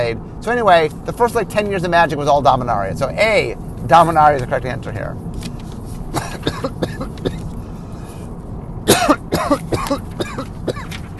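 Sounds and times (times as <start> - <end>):
speech: 0.0 - 5.3
low steady hum: 0.0 - 11.1
person coughing harshly: 6.1 - 7.5, 8.9 - 11.0.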